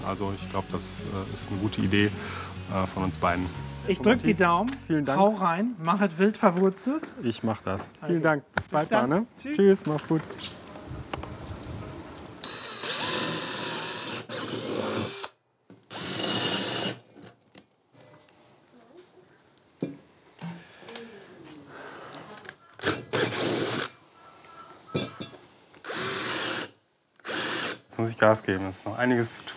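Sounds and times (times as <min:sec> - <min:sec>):
speech: 0:00.1 - 0:10.6, 0:28.2 - 0:29.5
power drill drilling holes for small test tubes: 0:12.4 - 0:17.0, 0:22.8 - 0:24.0, 0:25.8 - 0:27.9.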